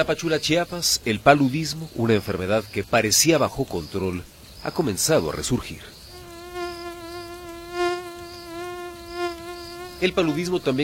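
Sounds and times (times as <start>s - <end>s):
speech: 0.0s - 6.0s, 10.0s - 10.8s
hovering mosquito whining: 6.0s - 10.8s.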